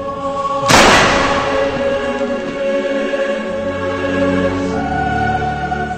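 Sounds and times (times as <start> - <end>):
steady tonal drone: 0.0 - 5.9
gunshot fired at point-blank range: 0.7 - 2.2.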